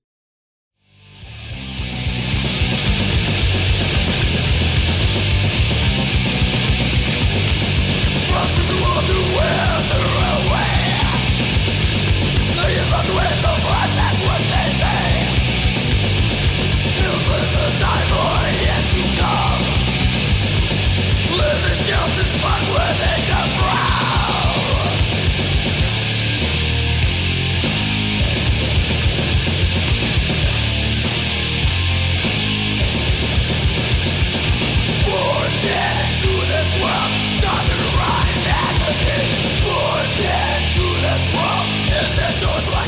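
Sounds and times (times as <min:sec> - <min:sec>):
dense wall of distorted death metal guitars: 0:00.8 - 0:42.8
harsh screamed death metal vocals: 0:08.0 - 0:11.6, 0:12.4 - 0:15.7, 0:16.9 - 0:20.2, 0:21.1 - 0:25.3, 0:35.0 - 0:42.8.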